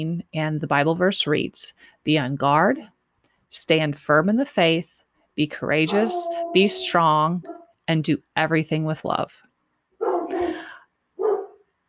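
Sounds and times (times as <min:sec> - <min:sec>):
speech: 0:00.0 - 0:09.4
dog barking: 0:05.9 - 0:07.7, 0:10.0 - 0:10.5, 0:11.2 - 0:11.6.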